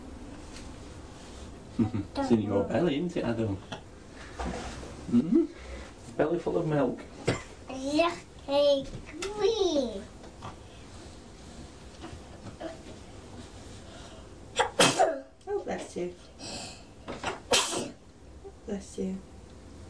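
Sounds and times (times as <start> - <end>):
speech: 1.8 - 3.8, 4.4 - 10.2, 16.0 - 16.3, 18.7 - 19.3
soft vocal sounds: 5.0 - 5.9
person sneezing: 14.6 - 15.2, 17.5 - 18.0.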